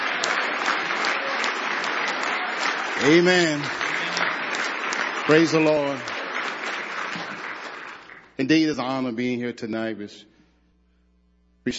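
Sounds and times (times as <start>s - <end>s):
audience clapping hands in praise: 0.0s - 8.9s
speech: 3.0s - 3.8s, 5.3s - 6.2s, 8.4s - 10.3s.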